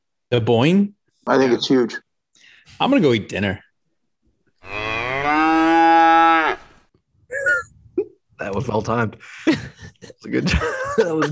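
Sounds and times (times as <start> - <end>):
speech: 0.3 - 2.0, 2.6 - 3.6, 8.4 - 11.2
cow mooing: 4.6 - 6.7
laughter: 9.3 - 11.2.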